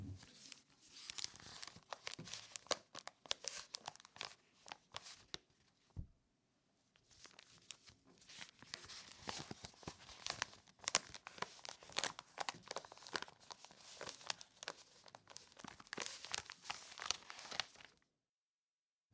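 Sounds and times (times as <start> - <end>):
college newspaper pages crinkling and rustling: 0.2 - 6.0, 6.9 - 18.0.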